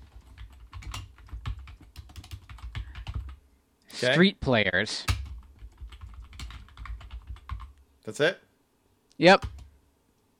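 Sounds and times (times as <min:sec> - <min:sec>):
typing on a computer keyboard while searching: 0:00.0 - 0:03.4, 0:05.1 - 0:07.8, 0:09.4 - 0:09.7
speech: 0:04.0 - 0:05.2, 0:08.1 - 0:08.4, 0:09.2 - 0:09.6.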